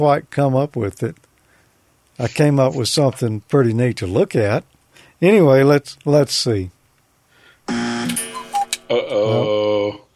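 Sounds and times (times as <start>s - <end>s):
speech: 0.0s - 1.2s, 2.2s - 6.8s
loud harsh buzzer blaring: 7.7s - 8.9s.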